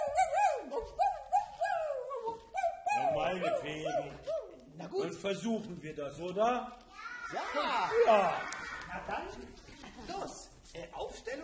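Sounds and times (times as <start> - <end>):
person imitating a dog howling: 0.0 - 4.6
speech: 3.4 - 11.4.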